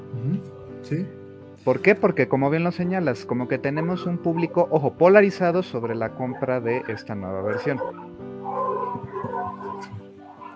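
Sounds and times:
speech: 0.9 - 8.1
dogs barking and yelping: 3.8 - 4.6, 5.9 - 10.5.

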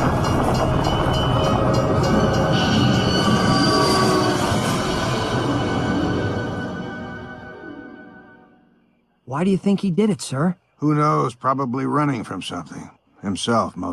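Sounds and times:
train rumbling along tracks: 0.0 - 7.0
high metallic train wheel squeals: 1.8 - 6.2
speech: 9.4 - 13.9.

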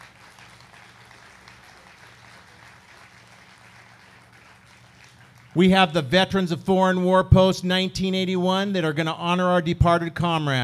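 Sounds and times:
crowd applauding at a ceremony honoring first responders: 0.0 - 6.0
speech: 5.5 - 10.6.

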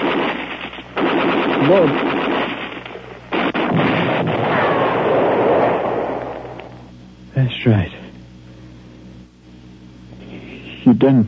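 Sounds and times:
grenade explosion in a wartime scene: 0.0 - 6.9
speech: 1.7 - 2.1, 11.0 - 11.2.

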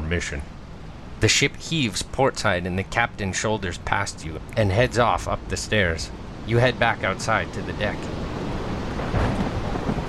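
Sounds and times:
torrential rain at sea: 0.0 - 10.0
speech: 0.1 - 0.6, 1.2 - 8.2
thunder rumbling at sea: 7.5 - 10.0.

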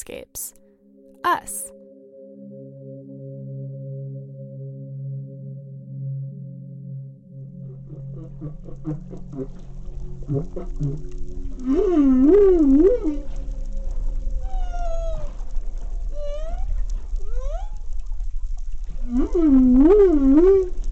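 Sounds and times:
speech: 0.0 - 0.6, 1.2 - 1.8, 8.4 - 13.4
humpback whale song: 7.0 - 20.9
low steady underwater rumble: 7.1 - 20.9.

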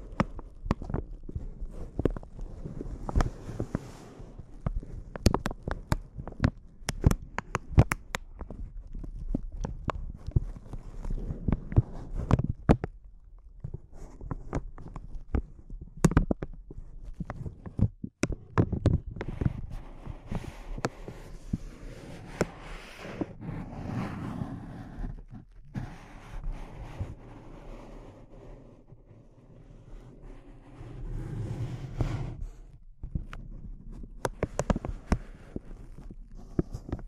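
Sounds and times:
close intense crinkling: 0.0 - 21.6, 32.4 - 37.0
soft low rustling and handling noise: 0.0 - 37.0.

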